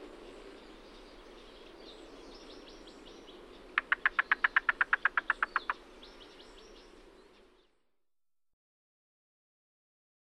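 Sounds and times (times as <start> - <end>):
yellow-billed cuckoo knock call: 3.8 - 5.8.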